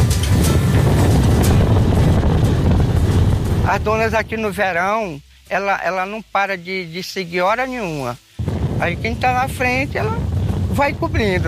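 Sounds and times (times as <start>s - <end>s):
strong wind roaring over sand dunes and freshwater lagoons in northeastern Brazil: 0.0s - 4.6s, 8.4s - 11.4s
speech: 3.7s - 8.2s, 8.8s - 11.4s.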